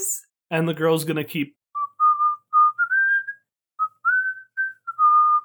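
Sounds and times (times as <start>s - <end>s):
speech: 0.5s - 1.6s
soft casual whistled tune: 1.8s - 5.4s.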